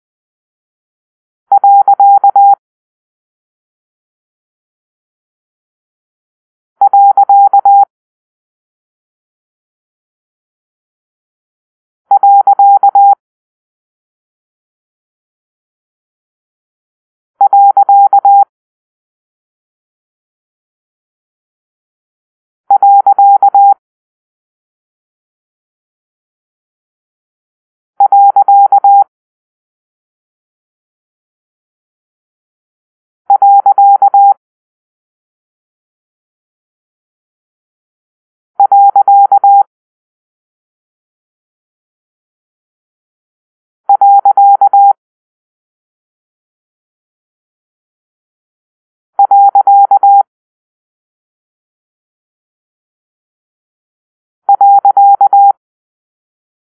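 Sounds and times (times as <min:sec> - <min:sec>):
morse code beeps for a period: 0:01.5 - 0:02.6, 0:06.8 - 0:07.9, 0:12.1 - 0:13.2, 0:17.4 - 0:18.5, 0:22.7 - 0:23.8, 0:28.0 - 0:29.1, 0:33.3 - 0:34.4, 0:38.6 - 0:39.7, 0:43.9 - 0:45.0, 0:49.2 - 0:50.3, 0:54.5 - 0:55.6.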